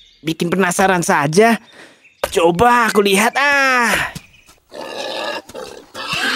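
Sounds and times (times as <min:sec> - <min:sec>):
speech: 0:00.2 - 0:04.8
wild boar grunting and squealing in a forest: 0:04.7 - 0:06.3.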